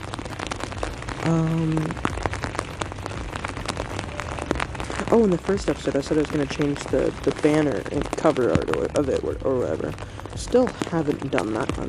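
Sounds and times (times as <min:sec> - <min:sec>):
heavy rain pattering on a surface: 0:00.0 - 0:11.8
speech: 0:01.2 - 0:02.1, 0:05.1 - 0:11.8.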